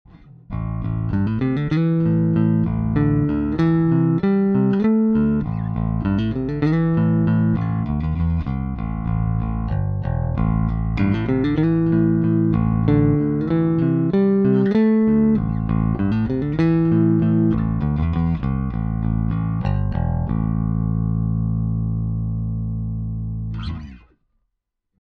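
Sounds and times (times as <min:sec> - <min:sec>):
pick strumming: 0:00.1 - 0:24.1.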